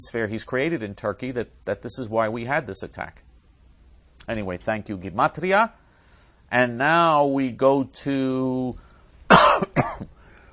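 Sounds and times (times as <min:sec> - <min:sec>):
speech: 0:00.0 - 0:03.3, 0:04.3 - 0:05.8, 0:06.5 - 0:09.7
person coughing after swallowing something wrong: 0:09.3 - 0:10.2.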